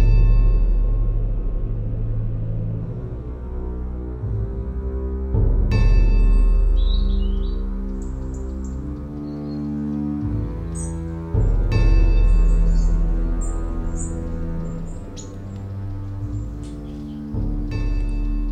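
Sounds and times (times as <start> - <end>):
steady low droning hum: 0.0 - 18.5
flock of migrating small birds chirping in flight: 6.5 - 18.5.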